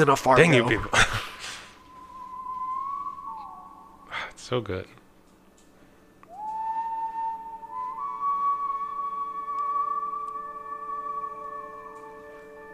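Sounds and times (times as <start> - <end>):
speech: 0.0 - 1.0, 4.5 - 5.0
person whistling a melody: 1.8 - 4.0, 6.3 - 12.7.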